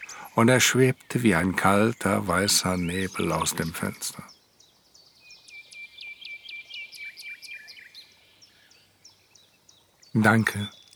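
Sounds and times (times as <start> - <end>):
faint steady hiss: 0.0 - 10.9
small bird singing with rapid chirps and trills: 0.0 - 10.9
speech: 0.2 - 4.4, 10.1 - 10.8.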